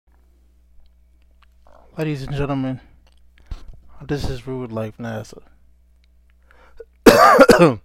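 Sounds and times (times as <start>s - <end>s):
speech: 2.0s - 2.9s, 4.0s - 5.5s, 7.6s - 7.8s
loud throat clearing: 6.8s - 7.8s
short rough cough: 7.1s - 7.8s.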